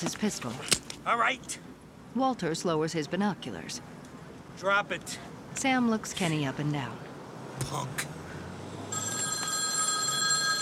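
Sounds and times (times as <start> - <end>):
speech: 0.0 - 4.0, 4.6 - 8.1
telephone ringing with a bright electronic tone: 8.9 - 10.6.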